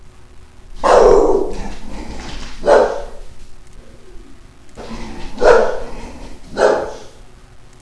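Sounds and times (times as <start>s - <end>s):
dog barking at a door: 0.8s - 1.8s, 2.6s - 3.4s, 4.8s - 7.2s.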